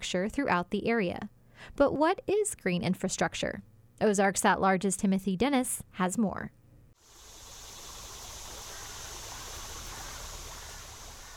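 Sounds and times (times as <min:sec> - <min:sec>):
speech: 0:00.0 - 0:06.6
creek water flowing after rain: 0:07.0 - 0:11.3.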